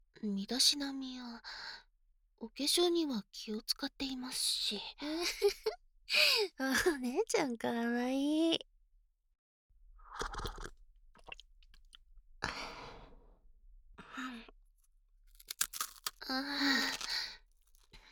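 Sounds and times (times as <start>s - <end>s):
speech: 0.2s - 1.8s, 2.4s - 8.7s, 10.2s - 10.6s, 16.3s - 17.0s
crunchy rice crackers being chewed: 10.2s - 12.0s, 15.3s - 18.1s.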